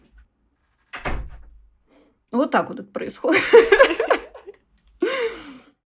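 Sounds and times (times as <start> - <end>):
door pushed shut with a solid thump: 0.9 - 1.6
speech: 2.4 - 4.2
laughter: 3.4 - 4.5.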